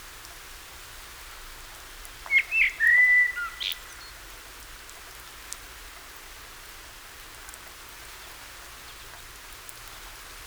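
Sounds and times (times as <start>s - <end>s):
Common blackbird fluted song phrase: 2.3s - 4.3s.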